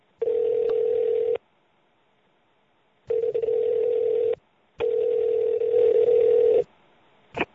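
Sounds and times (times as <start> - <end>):
steady telephone tone of an outgoing call: 0.2 - 1.4, 3.1 - 6.7.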